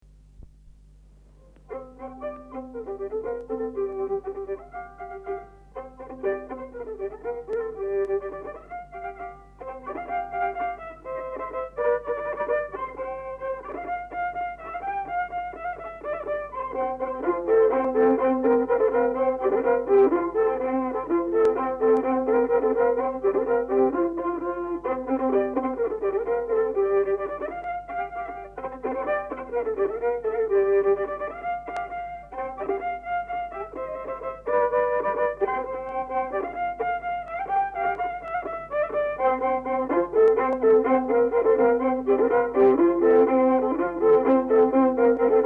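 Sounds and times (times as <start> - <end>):
folk polka on violin from Paistu: 0.0 - 45.4.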